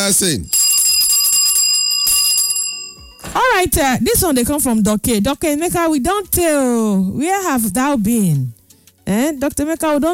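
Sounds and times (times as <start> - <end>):
speech: 0.0 - 0.6, 3.6 - 10.1
bell ringing: 0.0 - 3.6.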